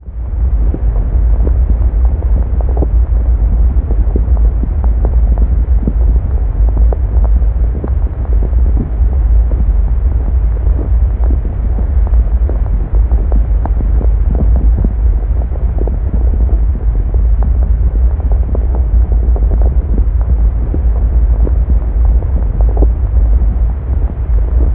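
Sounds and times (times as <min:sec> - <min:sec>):
deep organic cave ambience: 0:00.1 - 0:24.7.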